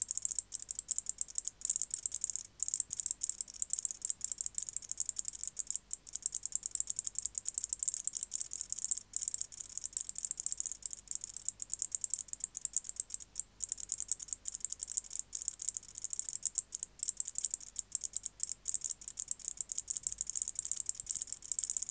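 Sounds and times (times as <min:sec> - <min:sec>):
white-faced bush-cricket Decticus albifrons song: 0:00.0 - 0:21.8.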